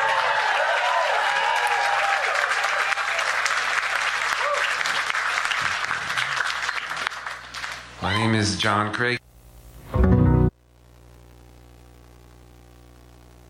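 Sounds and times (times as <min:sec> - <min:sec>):
people cheering: 0:00.0 - 0:08.7
audience clapping for the opening acts: 0:00.0 - 0:09.2
speech: 0:08.0 - 0:09.2.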